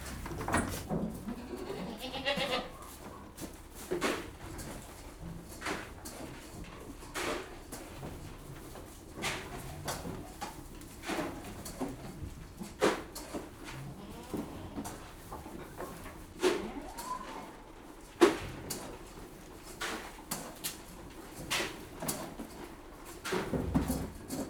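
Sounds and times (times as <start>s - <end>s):
clattering feeding noises: 0.0s - 24.4s
goats bleating while being fed: 1.2s - 2.8s.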